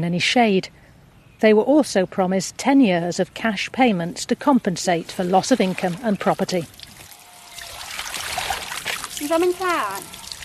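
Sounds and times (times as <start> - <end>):
speech: 0.0 - 0.8, 1.4 - 6.8, 9.3 - 10.2
faint outdoor ambience: 0.0 - 10.4
muddy water gushing and splashing from a hand pump: 4.7 - 10.4.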